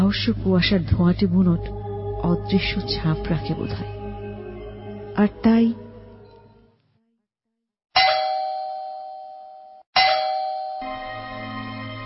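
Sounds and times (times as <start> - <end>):
speech: 0.1 - 4.0, 5.2 - 5.8
doorbell ringing at night: 8.0 - 12.0.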